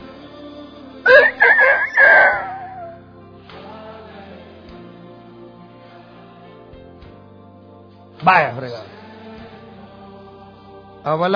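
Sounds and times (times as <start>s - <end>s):
rooster crowing: 1.1s - 3.0s
speech: 8.3s - 8.9s, 11.0s - 11.3s.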